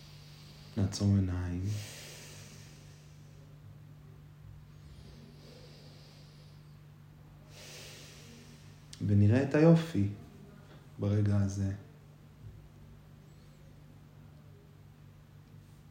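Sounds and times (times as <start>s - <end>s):
person taking slow deep breaths during meditation: 0.0s - 3.7s, 4.6s - 6.8s, 7.4s - 9.0s
steady low hum: 0.0s - 15.9s
speech: 0.8s - 2.0s, 9.0s - 10.2s, 11.0s - 11.8s.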